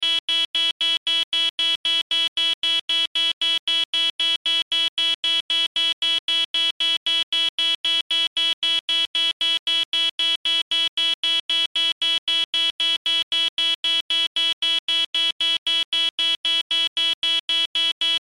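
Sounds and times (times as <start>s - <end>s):
sci fi control panel alarm buzzer beeps: 0.0s - 18.2s.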